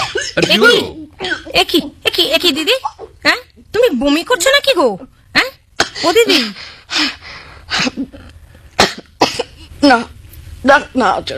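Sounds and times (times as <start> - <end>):
woman coughing: 0.0 - 1.6, 5.8 - 6.6, 7.7 - 9.7
speech: 0.4 - 5.4, 6.0 - 8.2, 9.8 - 11.3.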